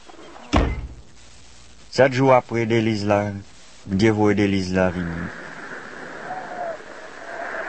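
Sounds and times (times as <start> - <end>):
heavy door slamming shut: 0.5 - 1.0
speech: 2.0 - 5.4.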